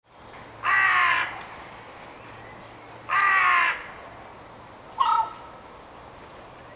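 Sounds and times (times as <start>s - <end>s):
carrion crow Corvus corone harsh hoarse caws: 0.6s - 1.4s, 3.1s - 4.0s, 5.0s - 5.6s.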